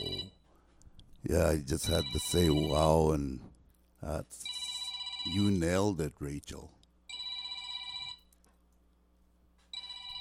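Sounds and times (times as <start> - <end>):
telephone ringing with a bright trilling electronic tone: 0.0 - 0.5, 1.8 - 3.0, 4.4 - 5.6, 7.1 - 8.3, 9.7 - 10.1
speech: 1.3 - 4.6, 5.2 - 6.8.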